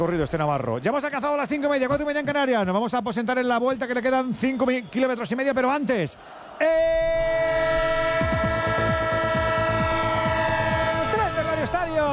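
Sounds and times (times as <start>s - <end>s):
speech: 0.0s - 7.8s
train horn sound effect: 7.4s - 11.7s.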